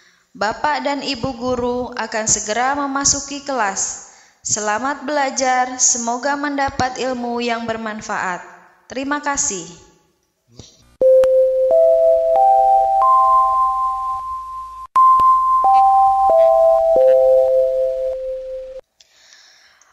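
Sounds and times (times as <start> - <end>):
speech: 0.4 - 9.9, 10.5 - 10.7
electronic school bell chime signalling start of class: 11.0 - 18.8.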